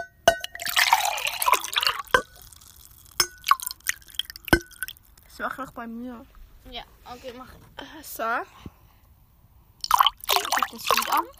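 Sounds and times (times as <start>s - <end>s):
light clinks against the vessel: 0.0s - 5.3s
water pouring into a container: 0.5s - 5.3s, 9.8s - 11.3s
speech: 5.4s - 8.7s, 10.7s - 11.3s.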